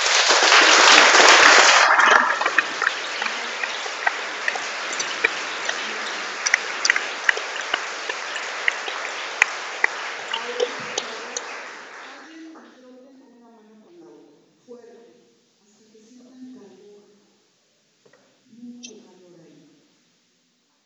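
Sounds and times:
group at a workshop session clapping loudly: 0.0 - 12.7
steady hiss: 0.0 - 20.8.

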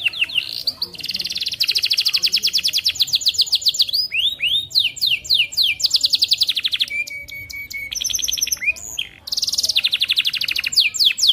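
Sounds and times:
Atlantic canary pulsed trill and swooping whistled notes: 0.0 - 11.3.

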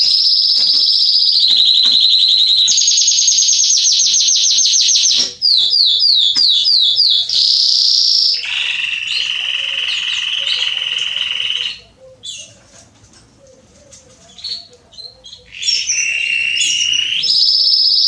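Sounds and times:
male Belgian canary singing a rolling trill: 0.0 - 18.0.

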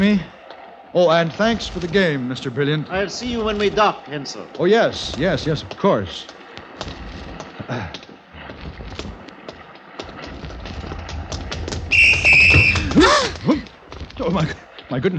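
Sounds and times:
speech: 0.0 - 0.3, 0.9 - 7.0, 7.7 - 8.0, 14.2 - 15.1
shrill whistle blast blown by a man doing wind sprints on a ship's deck: 11.9 - 13.0.

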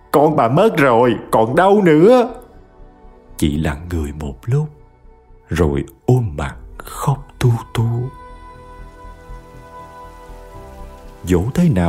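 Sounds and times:
speech: 0.2 - 2.4, 3.4 - 4.8, 5.5 - 8.2, 11.2 - 11.8
rain falling steadily in a village: 6.8 - 11.8.

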